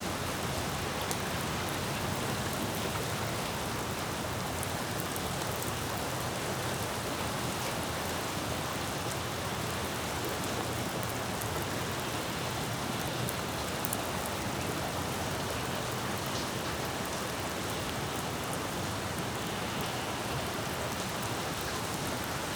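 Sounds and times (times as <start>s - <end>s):
rain splattering on a city street: 0.0s - 22.5s.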